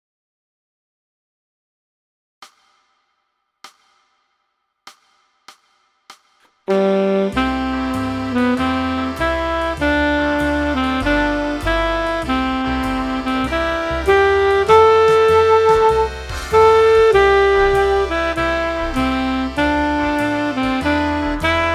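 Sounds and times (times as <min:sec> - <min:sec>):
saxophone playing: 0:06.7 - 0:21.7.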